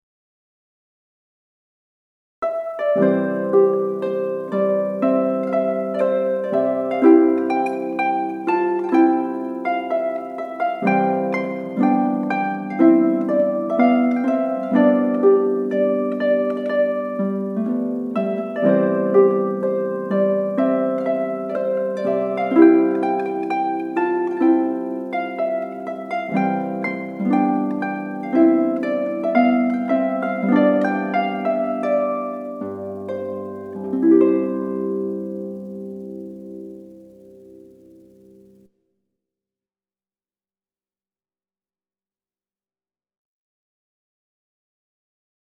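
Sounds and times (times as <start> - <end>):
rondeau on solo harp: 2.4 - 38.7.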